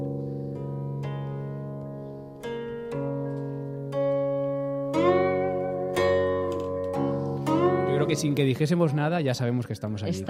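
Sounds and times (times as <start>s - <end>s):
guqin traditional Chinese plucked zither playing slow resonant notes: 0.0s - 9.1s
speech: 8.1s - 10.2s.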